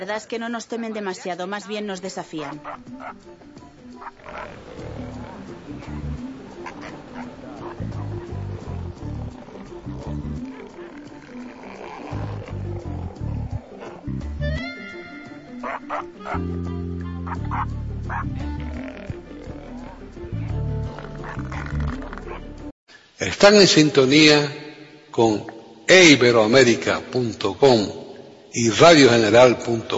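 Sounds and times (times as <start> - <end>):
speech: 0.0 - 4.9, 15.6 - 19.0, 23.2 - 24.6, 25.2 - 29.9
elephant seals roaring and bellowing: 2.4 - 22.6.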